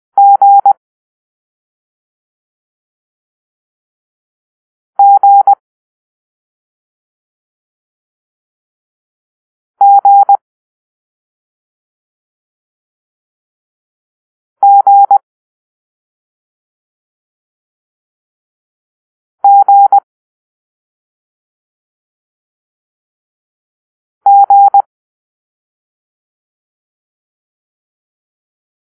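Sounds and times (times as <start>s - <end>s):
morse code letter G tones: 0.2s - 0.7s, 5.0s - 5.6s, 9.8s - 10.4s, 14.6s - 15.2s, 19.4s - 20.0s, 24.3s - 24.9s.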